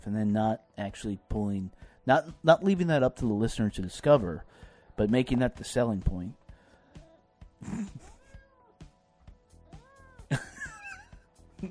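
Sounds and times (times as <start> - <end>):
speech: 0.0 - 6.4, 7.6 - 8.1
cat meowing: 8.0 - 8.9, 9.6 - 10.3.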